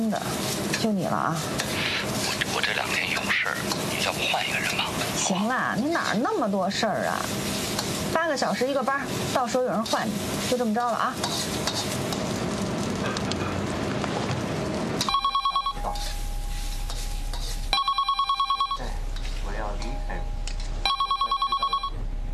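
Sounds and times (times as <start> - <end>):
speech: 0.0 - 12.0
steady sizzling background: 0.0 - 22.3
telephone ringing with trilling electronic ring: 15.1 - 15.8, 17.8 - 18.9, 20.8 - 22.0.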